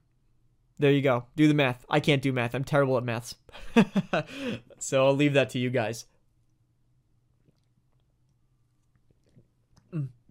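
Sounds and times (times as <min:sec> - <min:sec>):
speech: 0:00.8 - 0:06.1, 0:09.9 - 0:10.2
person sipping water: 0:07.2 - 0:10.2
gulp: 0:09.0 - 0:10.2.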